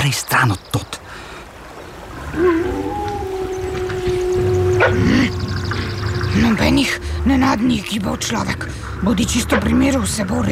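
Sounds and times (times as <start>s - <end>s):
speech: 0.0s - 1.0s, 2.4s - 2.8s, 4.8s - 5.6s, 6.3s - 10.4s
approaching pack of wolves howling: 2.1s - 10.4s.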